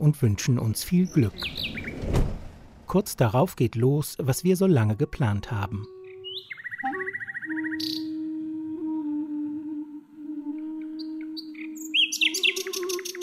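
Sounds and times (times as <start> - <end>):
speech: 0.0 - 2.3, 2.9 - 6.0
nightingale singing in park bushes: 0.8 - 2.0, 5.2 - 8.4, 10.6 - 13.2
sustained wind instrument tone: 5.4 - 13.2.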